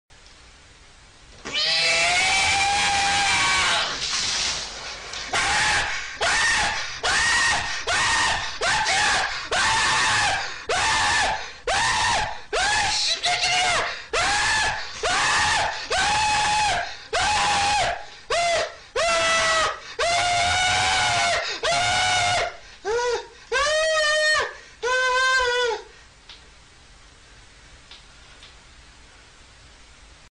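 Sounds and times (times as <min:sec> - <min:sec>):
person screaming: 0:01.4 - 0:04.0, 0:05.3 - 0:25.9
balloon bursting: 0:03.8 - 0:05.4.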